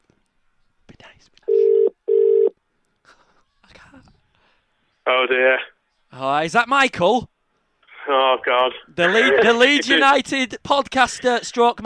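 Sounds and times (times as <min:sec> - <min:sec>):
telephone ringback tone double ring: 0:01.5 - 0:02.5
speech: 0:05.1 - 0:07.3, 0:08.1 - 0:11.8.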